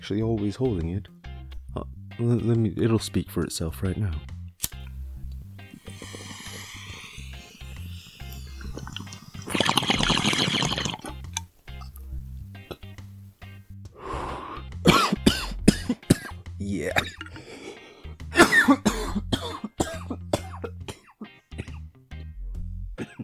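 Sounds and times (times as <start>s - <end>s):
speech: 0.0s - 1.2s, 1.8s - 4.4s
water bong gurgling and bubbling: 5.1s - 13.0s, 17.0s - 17.4s
long breathy exhale: 5.7s - 9.6s, 14.0s - 14.7s, 17.3s - 18.2s
person coughing after a bong hit: 14.8s - 17.5s, 18.3s - 21.9s, 23.0s - 23.2s
throat clearing: 14.9s - 17.4s, 18.3s - 21.9s, 23.0s - 23.2s.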